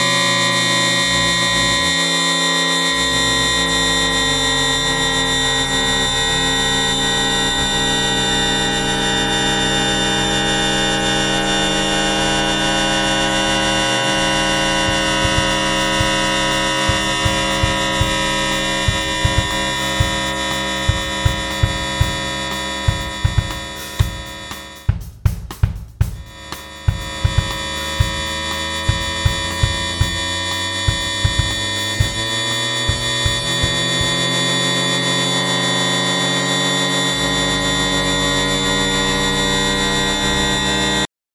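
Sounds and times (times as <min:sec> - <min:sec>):
synthesizer drum drone: 0:00.0 - 0:41.0.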